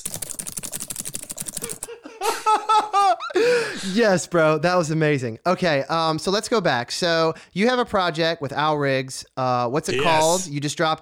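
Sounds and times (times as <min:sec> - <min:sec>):
frantic typing on a computer keyboard: 0:00.0 - 0:01.9
people laughing: 0:01.6 - 0:04.0
speech: 0:03.4 - 0:10.9.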